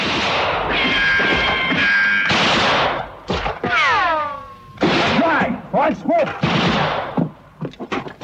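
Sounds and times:
gunfire in a shootout on a walkway: 0.0s - 3.9s, 4.8s - 5.6s, 6.3s - 7.3s.

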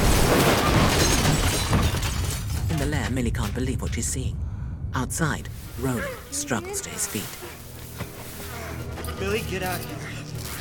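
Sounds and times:
London bus crashing into the desert and rolling over: 0.0s - 3.6s
speech: 3.1s - 7.6s, 9.2s - 10.0s.

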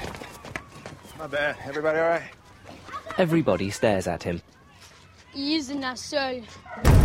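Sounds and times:
speech: 1.3s - 2.4s, 3.1s - 4.5s, 5.3s - 7.0s
person landing hard and smashing the road surface with a booming thud and crash: 6.9s - 7.0s.

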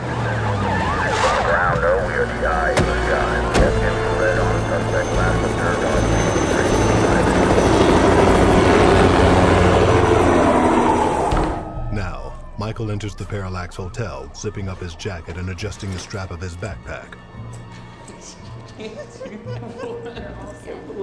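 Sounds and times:
helicopter flying overhead with steady rotor roar: 0.0s - 11.8s
police siren-like wails in city streets: 0.0s - 17.0s
speech: 12.8s - 17.3s, 18.8s - 21.0s
laughter: 18.2s - 20.8s.

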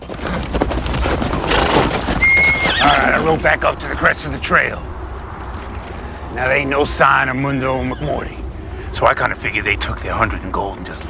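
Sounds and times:
horse trotting under a rider, turning in a circle: 0.0s - 3.6s
speech: 3.0s - 4.9s, 6.3s - 11.0s.

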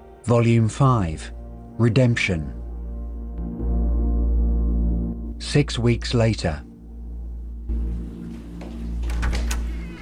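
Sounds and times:
speech: 0.2s - 2.6s, 5.4s - 6.7s
steady low hum: 2.4s - 10.0s
apartment door opening: 8.5s - 10.0s.

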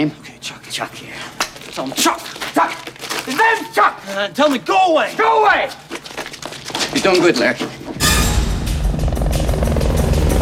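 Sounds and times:
speech: 0.0s - 5.9s, 7.0s - 8.0s
police helicopter flying overhead: 8.1s - 10.4s.

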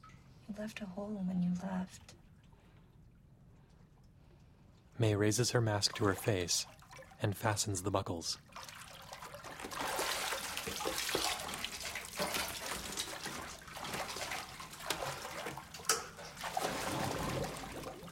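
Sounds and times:
speech: 0.5s - 2.2s, 5.0s - 8.8s
water churning and bubbling as a diver sinks in and kicks: 5.3s - 18.0s.

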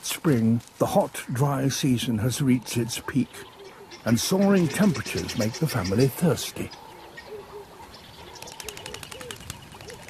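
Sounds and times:
speech: 0.2s - 6.8s
flock of birds cooing at a waterhole: 1.4s - 10.0s
birds' wingbeats fluttering: 8.2s - 10.0s.

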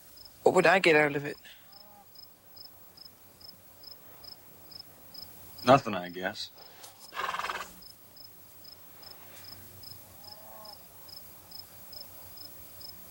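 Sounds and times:
crickets chirping: 0.0s - 13.1s
speech: 0.5s - 1.6s, 5.6s - 6.7s
horse neighing in the mountains: 7.1s - 7.7s.

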